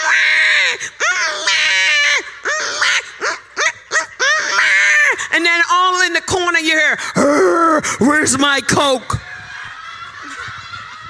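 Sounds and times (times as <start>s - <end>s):
human voice imitating babies crying: 0.0s - 5.5s, 7.2s - 8.2s
speech: 6.2s - 9.3s
laughter: 9.2s - 11.0s.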